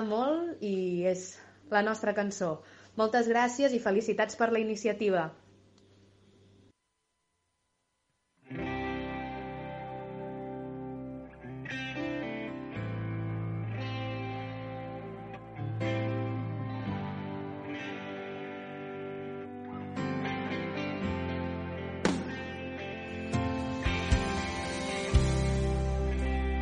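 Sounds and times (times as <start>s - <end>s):
speech: 0.0s - 5.4s
heavily effected chorused guitar chords: 8.4s - 26.6s
sustained bass: 22.0s - 26.6s.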